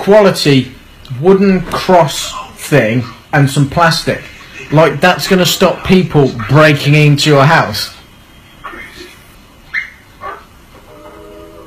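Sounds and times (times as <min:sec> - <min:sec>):
speech: 0:00.0 - 0:08.0
dog drawn-out whine: 0:08.6 - 0:11.6
dog barking: 0:09.7 - 0:10.5.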